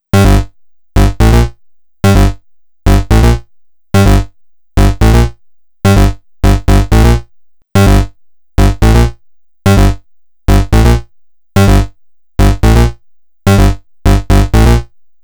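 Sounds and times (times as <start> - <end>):
bright house bass line in G minor: 0.2 - 3.4, 4.0 - 5.3, 5.9 - 7.2, 7.8 - 9.1, 9.7 - 11.0, 11.6 - 14.9.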